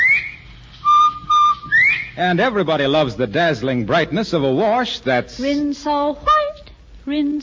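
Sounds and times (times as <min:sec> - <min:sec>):
bobwhite quail whistle call: 0:00.0 - 0:02.2
speech: 0:02.2 - 0:06.4, 0:07.1 - 0:07.4.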